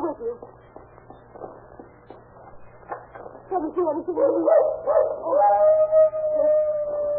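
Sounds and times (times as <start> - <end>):
speech: 3.6 - 5.8
dog howling: 4.5 - 7.1.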